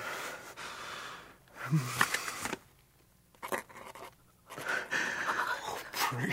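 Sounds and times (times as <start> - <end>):
faint breathing: 0.0 - 2.6, 4.5 - 6.1
speech: 1.7 - 2.1, 6.1 - 6.3
pen scratching signature on paper: 3.4 - 4.6.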